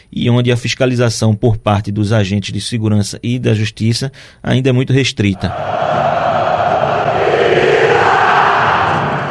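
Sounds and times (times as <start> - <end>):
speech: 0.0 - 6.4
huge football crowd chanting in unison inside a stadium: 5.4 - 9.2.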